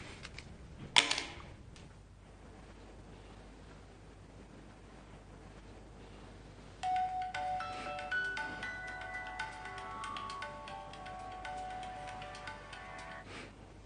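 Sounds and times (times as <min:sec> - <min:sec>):
telephone ringing with repeating electronic melody: 0:06.8 - 0:13.2.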